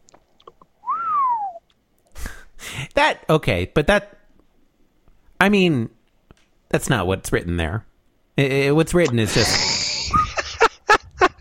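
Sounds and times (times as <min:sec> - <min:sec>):
person whistling one clear sustained note: 0:00.8 - 0:01.6
speech: 0:03.0 - 0:04.2, 0:05.4 - 0:06.0, 0:06.7 - 0:09.7
laughter: 0:09.2 - 0:11.4.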